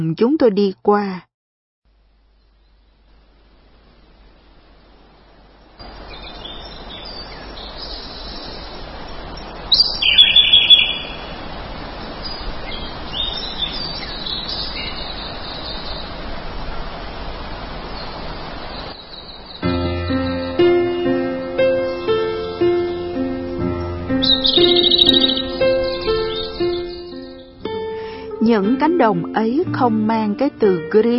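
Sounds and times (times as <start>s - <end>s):
speech: 0.0s - 1.3s, 28.5s - 31.1s
steady hissy outdoor ambience: 1.9s - 31.1s
birds singing in open fields: 5.4s - 16.8s, 17.6s - 29.2s
soft melodic tonal background: 19.6s - 31.1s.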